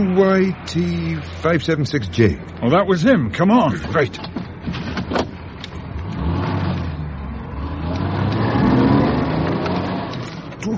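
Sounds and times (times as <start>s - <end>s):
speech: 0.0s - 4.4s
car engine revving: 5.7s - 10.4s
car speeding past: 6.1s - 10.2s.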